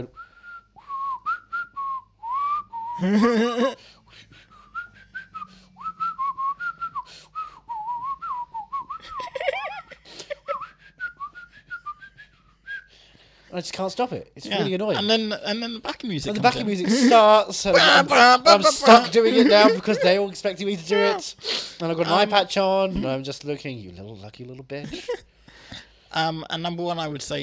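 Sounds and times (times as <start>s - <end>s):
speech: 0.0s - 0.3s, 3.0s - 4.3s, 13.5s - 25.3s, 26.1s - 27.4s
person whistling a wavering melody: 0.1s - 3.1s, 4.4s - 9.3s, 10.5s - 12.9s, 19.3s - 20.0s
laughter: 3.0s - 4.3s, 9.0s - 10.6s, 16.3s - 21.3s, 24.8s - 25.2s
short voiced bursts: 16.4s - 20.2s, 20.8s - 21.3s.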